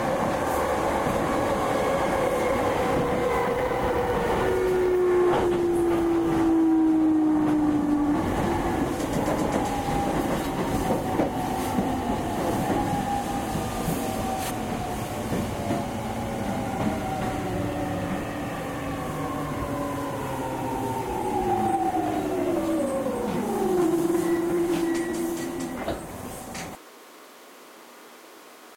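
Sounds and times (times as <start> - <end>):
E231 train middle stop: 0.0 - 26.8.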